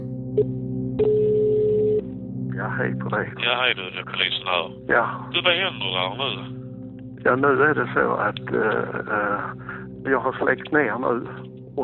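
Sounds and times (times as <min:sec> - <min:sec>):
low hum: 0:00.0 - 0:11.8
speech: 0:00.4 - 0:01.2, 0:02.8 - 0:06.6, 0:07.2 - 0:11.8
telephone ringing tone of outgoing call: 0:01.0 - 0:02.0.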